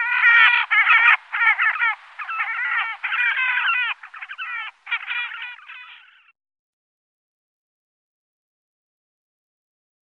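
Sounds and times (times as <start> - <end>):
horned grebe harsh nasal trilled squeals: 0.0 - 6.3.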